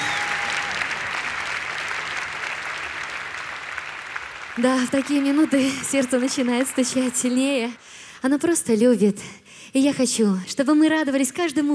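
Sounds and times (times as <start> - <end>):
sustained applause from a large audience: 0.0 - 7.8
speech: 4.6 - 11.7.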